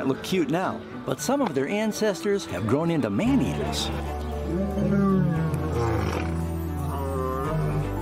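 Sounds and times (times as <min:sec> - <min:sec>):
speech: 0:00.0 - 0:04.9
lion roaring in a lion park in South Africa: 0:03.6 - 0:07.9.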